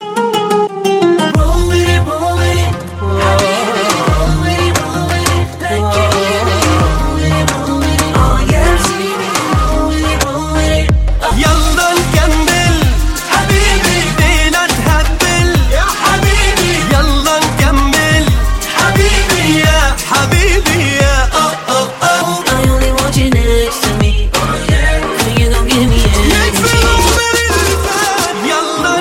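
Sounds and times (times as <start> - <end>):
Arabic background music: 0.0 - 29.0.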